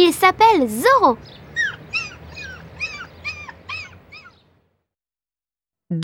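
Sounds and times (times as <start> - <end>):
speech: 0.0 - 1.4
dog whimpering and yipping: 1.5 - 4.4.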